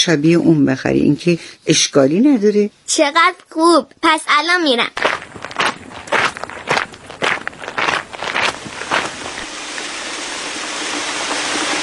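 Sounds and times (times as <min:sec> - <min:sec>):
speech: 0:00.0 - 0:05.1
footsteps: 0:04.8 - 0:09.9
steady rain: 0:07.9 - 0:11.8.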